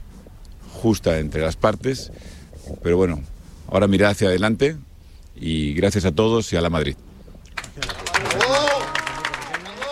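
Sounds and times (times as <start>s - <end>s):
speech: 0.8s - 7.0s
audience applause after a speech: 7.5s - 9.9s.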